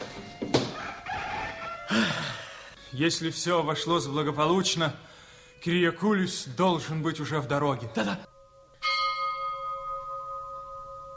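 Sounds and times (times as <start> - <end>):
speech: 1.9 - 2.3, 3.0 - 8.3
single deep church bell tolling for a death: 8.3 - 11.1.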